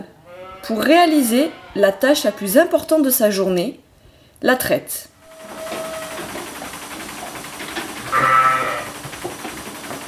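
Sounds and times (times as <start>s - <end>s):
steady mechanical hum: 0.0s - 10.0s
sheep and lambs bleating in a barn: 0.1s - 2.8s, 8.0s - 9.0s
speech: 0.6s - 3.8s, 4.4s - 5.1s.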